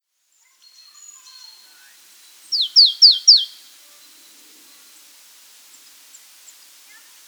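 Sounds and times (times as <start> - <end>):
Poecile palustris marsh tit calling: 2.5 - 3.7.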